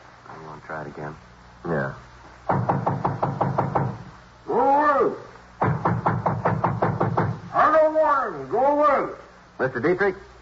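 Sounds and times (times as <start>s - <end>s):
speech: 0.6s - 3.1s, 8.1s - 10.3s
knocking on a door: 2.5s - 4.1s, 5.6s - 7.5s.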